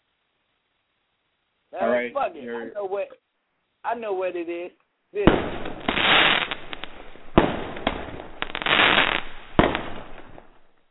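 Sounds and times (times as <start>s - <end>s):
speech: 1.7s - 3.2s, 3.8s - 6.4s
fireworks crackling and popping with sharp bangs: 5.2s - 10.8s.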